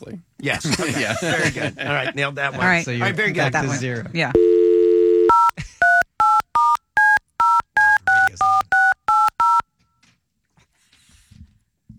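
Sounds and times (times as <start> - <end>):
speech: 0.0 - 4.5
laughter: 0.5 - 2.4
telephone keypad dual-tone beeps: 4.4 - 9.6.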